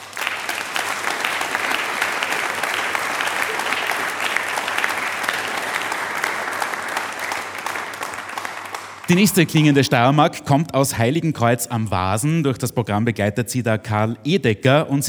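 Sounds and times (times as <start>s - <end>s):
sustained audience applause: 0.0s - 10.1s
speech: 9.1s - 15.0s.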